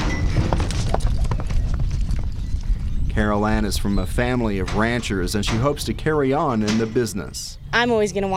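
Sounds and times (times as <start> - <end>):
horse hooves pounding across dirt of a dusty rodeo arena during barrel racing practice: 0.0 - 7.3
constant low rumble of outdoor rodeo arena noise in the desert: 0.0 - 8.3
speech: 3.2 - 8.3.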